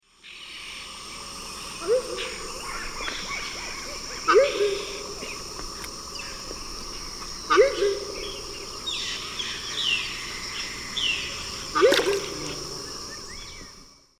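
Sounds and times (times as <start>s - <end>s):
Anhima cornuta calls in the Eastern Lowlands of South America: 1.7s - 5.2s, 7.4s - 13.5s.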